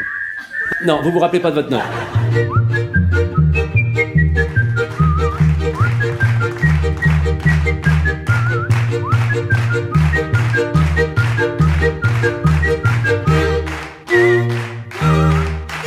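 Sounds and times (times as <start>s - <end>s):
person whistling a bright clear melody: 0.0s - 1.1s, 2.3s - 15.7s
laughter: 0.4s - 2.6s
speech: 0.8s - 2.5s
rhythmic musical accompaniment with bass and percussion: 2.2s - 13.7s.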